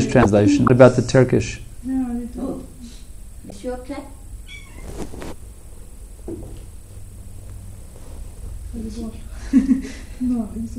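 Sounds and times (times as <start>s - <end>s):
steady hum of noise: 0.0s - 10.7s
speech: 0.1s - 1.6s, 8.7s - 10.7s
cat meowing: 4.4s - 5.1s
laughter: 9.3s - 10.2s.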